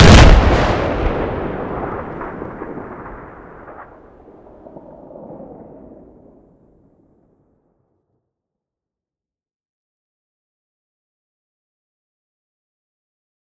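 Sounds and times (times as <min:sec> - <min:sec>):
grenade explosion: 0:00.0 - 0:06.5.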